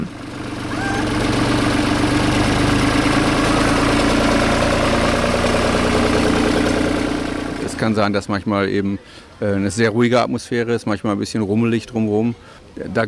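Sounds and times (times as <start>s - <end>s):
tractor diesel engine rumbling while driving past: 0.0s - 8.3s
speech: 7.9s - 13.0s.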